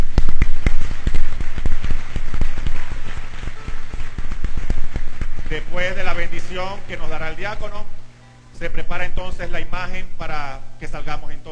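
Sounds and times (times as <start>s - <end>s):
church audience applauding: 0.0s - 6.3s
speech: 5.6s - 8.0s, 8.6s - 11.5s.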